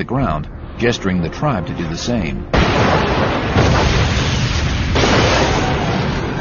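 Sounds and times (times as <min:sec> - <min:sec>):
speech: 0:00.0 - 0:04.0
grenades exploding: 0:02.5 - 0:06.3.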